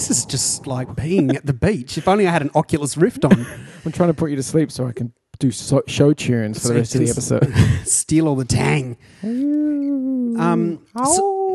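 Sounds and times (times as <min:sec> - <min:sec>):
laughter: 0:00.0 - 0:04.5, 0:06.6 - 0:07.9
speech: 0:00.1 - 0:11.4
person imitating a wolf howl: 0:09.2 - 0:11.5.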